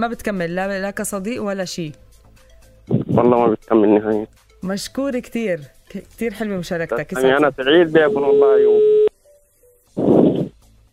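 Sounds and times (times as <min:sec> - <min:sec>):
speech: 0:00.0 - 0:02.1, 0:03.1 - 0:09.0
telephone call tones while placing a call: 0:07.2 - 0:09.1.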